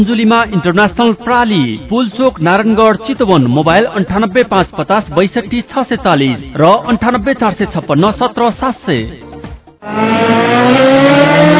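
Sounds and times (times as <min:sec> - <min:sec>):
speech: 0:00.0 - 0:09.2, 0:09.8 - 0:11.5
Yamaha motorcycle engine revving: 0:09.8 - 0:11.5.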